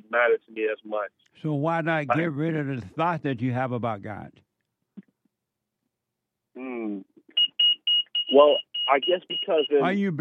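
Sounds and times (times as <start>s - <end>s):
speech: 0.1s - 4.4s, 6.6s - 7.1s, 8.3s - 10.2s
work truck alarm beeping: 7.4s - 9.9s.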